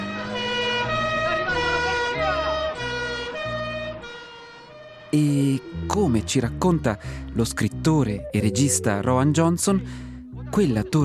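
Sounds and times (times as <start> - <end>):
police siren wailing in a two-tone pattern: 0.0 - 9.9
speech: 5.1 - 11.0.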